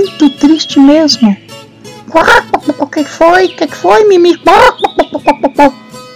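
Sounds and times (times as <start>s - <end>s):
speech: 0.0s - 1.4s, 2.1s - 5.8s
hens clucking: 2.1s - 5.8s.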